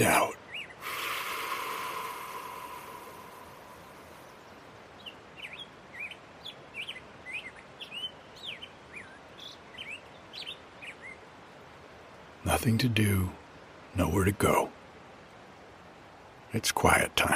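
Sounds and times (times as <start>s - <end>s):
faint background hiss: 0.0s - 17.3s
male Black-headed Grosbeak singing by a creek in spring: 0.4s - 0.8s, 3.7s - 11.2s
speech: 12.6s - 13.4s, 14.0s - 14.8s, 16.5s - 17.3s.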